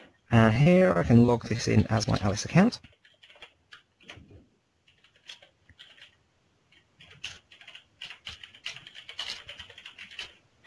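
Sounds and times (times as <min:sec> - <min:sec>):
speech: 0:00.3 - 0:03.0
typing on a computer keyboard while logging in to a management portal website: 0:02.0 - 0:10.4.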